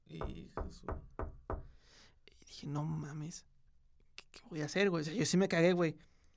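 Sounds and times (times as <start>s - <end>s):
speech: 0.1s - 1.1s, 2.5s - 3.5s, 4.5s - 6.1s
sharp knocks as if rapping on a door: 0.1s - 1.8s.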